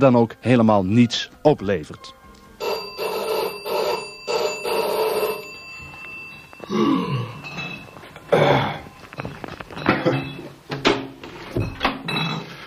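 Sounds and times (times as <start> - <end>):
speech: 0.0 - 2.2, 6.7 - 7.4, 8.3 - 10.3
doorbell rung insistently by a milkman: 2.6 - 10.6
shuffling movement: 5.4 - 11.6.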